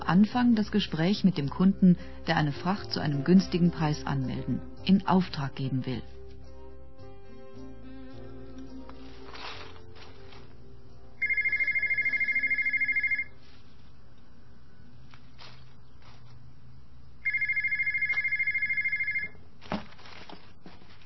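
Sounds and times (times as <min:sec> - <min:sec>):
speech: 0:00.1 - 0:06.2
telephone ringing with electronic trilling tones: 0:11.2 - 0:13.4, 0:17.2 - 0:19.4.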